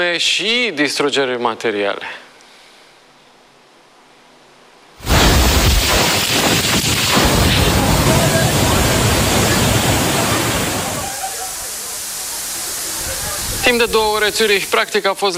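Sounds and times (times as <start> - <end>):
speech: 0.0 - 2.3, 13.7 - 15.3
gusting wind: 5.0 - 14.8
low rumbling bursts: 5.0 - 14.8
heavy rain: 5.0 - 15.3.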